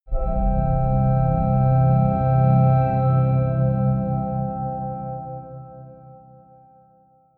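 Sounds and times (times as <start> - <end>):
short major organ swell: 0.1 - 5.9.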